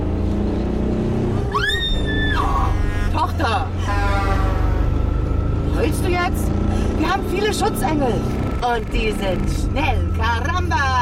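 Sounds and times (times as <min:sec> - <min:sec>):
car engine revving as the car accelerates to overtake a truck: 0:00.0 - 0:10.9
heavy road rumble: 0:00.0 - 0:10.9
speech: 0:07.4 - 0:10.9.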